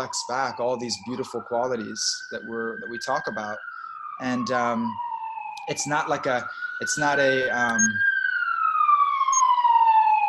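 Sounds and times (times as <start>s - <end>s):
speech: 0.0s - 8.1s
loud wailing siren: 0.0s - 10.2s.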